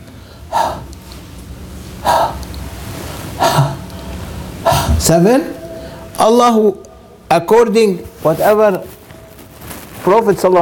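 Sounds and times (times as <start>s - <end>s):
sharp forceful exhaled breaths: 0.1s - 1.0s, 2.0s - 5.1s
speech: 5.1s - 5.6s, 6.2s - 9.0s, 10.0s - 10.6s.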